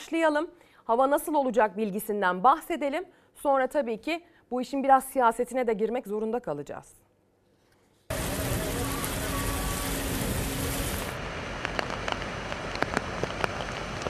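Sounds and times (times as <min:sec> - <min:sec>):
speech: 0:00.1 - 0:07.0
heavy rain falling over an earthquake-hit region: 0:08.1 - 0:14.0.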